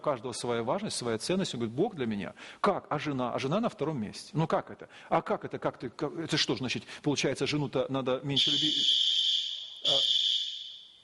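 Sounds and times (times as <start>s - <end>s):
speech: 0.0s - 9.1s
alarm sounding a steady high-pitched tone: 8.4s - 11.0s.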